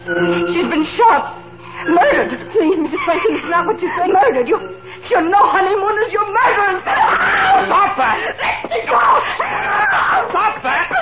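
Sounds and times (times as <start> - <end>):
speech: 0.0 - 10.9
laughter: 2.0 - 4.4, 6.9 - 10.9
woman screaming: 6.4 - 10.9.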